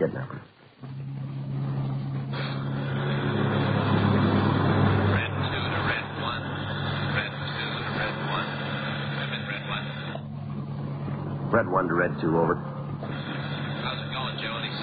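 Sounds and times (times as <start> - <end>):
car engine drone while cruising along a highway: 0.0 - 14.8
road and wind noise: 0.3 - 14.8
speech: 11.6 - 12.7.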